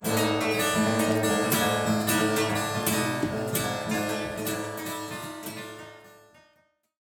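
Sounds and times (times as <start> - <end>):
guitars: 0.0 - 6.6.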